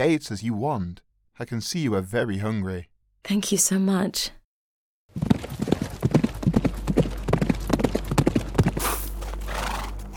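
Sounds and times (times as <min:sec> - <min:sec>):
speech: 0:00.0 - 0:04.4
horse hooves clip-clopping on sand: 0:05.1 - 0:10.1
horse snorting or whinnying: 0:08.7 - 0:10.1.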